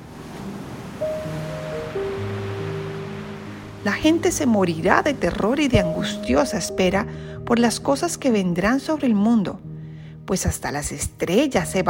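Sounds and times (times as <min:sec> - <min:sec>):
ocean waves roaring: 0:00.0 - 0:07.4
sustained low musical tones: 0:01.0 - 0:10.3
speech: 0:03.8 - 0:09.7, 0:10.3 - 0:11.8.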